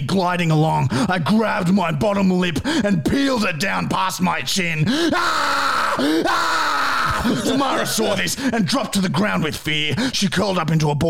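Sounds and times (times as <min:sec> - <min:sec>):
speech: 0:00.1 - 0:11.0
woman screaming: 0:05.1 - 0:08.2
laughter: 0:07.0 - 0:08.6.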